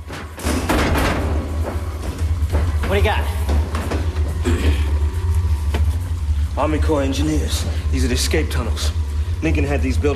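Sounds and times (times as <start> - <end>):
foot stamping on a square steel floor door: 0.0 - 6.1
dense loud rumble: 0.0 - 10.1
speech: 2.9 - 3.5, 6.6 - 10.1.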